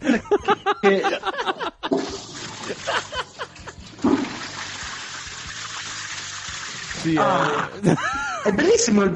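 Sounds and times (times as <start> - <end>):
people chuckling: 0.0 - 3.9, 7.2 - 8.8
speech: 0.8 - 1.3, 7.1 - 9.1
water gushing in a bathroom: 1.9 - 7.5.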